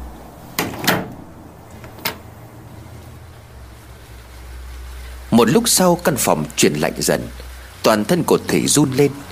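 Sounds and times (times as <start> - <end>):
wooden window shutter swinging shut: 0.6 - 1.2
speech: 5.4 - 9.3.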